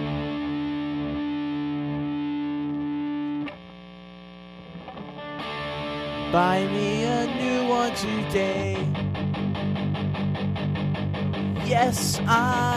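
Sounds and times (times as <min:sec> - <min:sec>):
heavily distorted electric guitar chords in a song: 0:00.0 - 0:12.7
speech: 0:06.3 - 0:09.1, 0:11.7 - 0:12.7.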